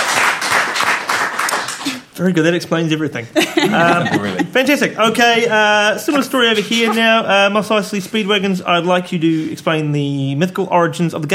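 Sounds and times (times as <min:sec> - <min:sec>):
crowd applause: 0:00.0 - 0:02.1
speech: 0:01.8 - 0:11.3
laughter: 0:03.2 - 0:08.3.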